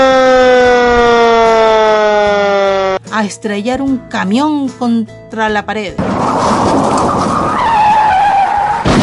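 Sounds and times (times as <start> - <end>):
fire engine siren wailing: 0.0 - 3.0, 6.0 - 8.9
speech: 3.2 - 7.7.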